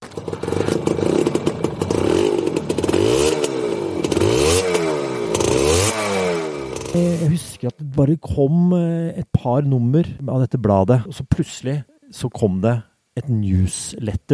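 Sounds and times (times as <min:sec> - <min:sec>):
moped engine revving: 0:00.0 - 0:07.4
speech: 0:07.6 - 0:14.3.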